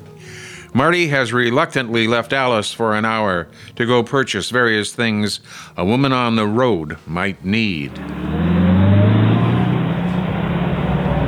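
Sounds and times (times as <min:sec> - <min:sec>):
speech: 0:00.7 - 0:08.3
car engine revving as it drives off in Atlantic City: 0:07.8 - 0:11.2.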